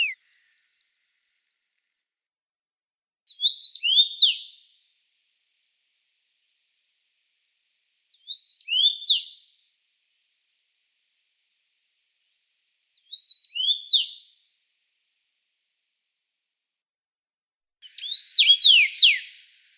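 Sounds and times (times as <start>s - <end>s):
common rosefinch song in Russia: 0.0s - 1.5s, 3.3s - 4.7s, 8.1s - 9.6s, 13.0s - 14.4s, 17.8s - 19.7s.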